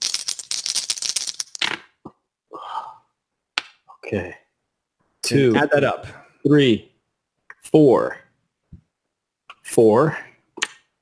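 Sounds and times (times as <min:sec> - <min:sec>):
dice rattling and clattering across a hard surface: 0:00.0 - 0:01.8
speech: 0:04.0 - 0:04.4, 0:05.3 - 0:06.9, 0:07.6 - 0:08.2, 0:09.8 - 0:10.3.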